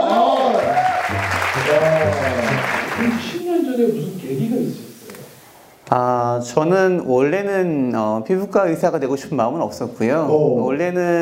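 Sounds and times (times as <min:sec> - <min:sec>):
audience applause: 0:00.0 - 0:05.4
speech: 0:01.7 - 0:04.9, 0:05.9 - 0:11.2.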